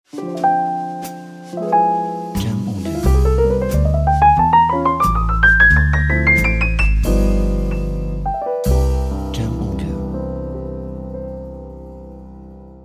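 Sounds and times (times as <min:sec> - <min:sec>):
jazz piano logo jingle: 0:00.1 - 0:12.8.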